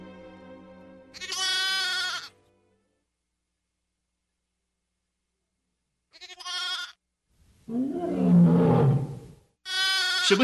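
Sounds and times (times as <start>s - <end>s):
high-pitched lamb bleat: 1.1s - 2.3s, 6.1s - 7.0s, 9.6s - 10.4s
deep rumbling lion roar: 7.7s - 9.4s
speech: 10.3s - 10.4s.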